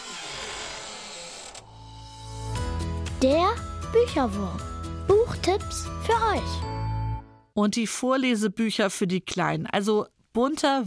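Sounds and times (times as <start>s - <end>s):
door to a book department creaking open: 0.0s - 2.2s
speech: 3.2s - 6.8s, 7.6s - 10.8s.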